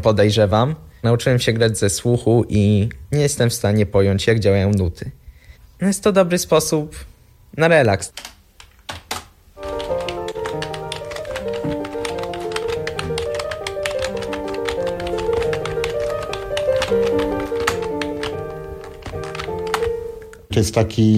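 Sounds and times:
speech: 0.0 - 5.2, 5.8 - 8.3, 20.6 - 21.1
fast typing on a computer keyboard: 8.2 - 20.0.

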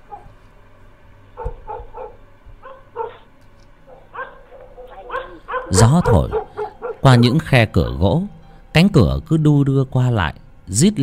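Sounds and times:
dogs barking in a village at night: 0.0 - 0.4, 1.3 - 7.6
speech: 5.7 - 11.0.

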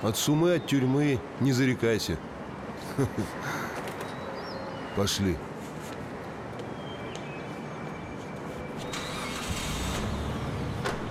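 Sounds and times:
speech: 0.0 - 2.4, 3.0 - 3.6, 5.0 - 5.5
car engine starting: 8.9 - 11.0.

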